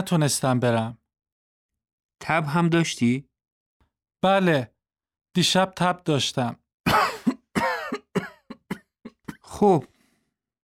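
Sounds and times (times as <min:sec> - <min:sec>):
speech: 0:00.0 - 0:01.0, 0:02.2 - 0:03.3, 0:04.2 - 0:04.7, 0:05.3 - 0:06.6, 0:09.6 - 0:09.9
harsh coughs from a person ill with fever, ear pain and a sore throat: 0:06.9 - 0:09.6.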